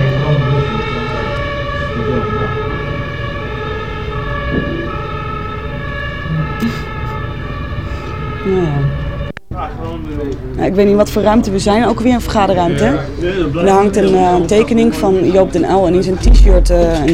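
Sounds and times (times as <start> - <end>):
fire engine siren: 0.0 - 9.3, 16.1 - 17.1
faint noise: 0.0 - 17.1
speech: 8.5 - 9.0, 10.0 - 17.1.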